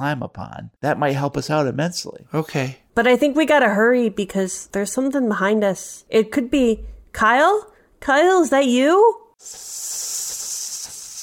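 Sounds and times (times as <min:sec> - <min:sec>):
speech: 0:00.0 - 0:10.4
loud sharp steady hiss: 0:09.4 - 0:11.2.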